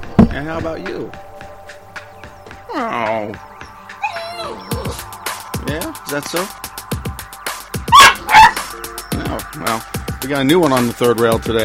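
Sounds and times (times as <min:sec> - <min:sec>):
speech: 0:00.4 - 0:01.3, 0:02.7 - 0:03.5, 0:05.7 - 0:06.7, 0:09.2 - 0:11.6
young boxer-lab mix puppy barking: 0:04.0 - 0:05.0, 0:07.9 - 0:08.7.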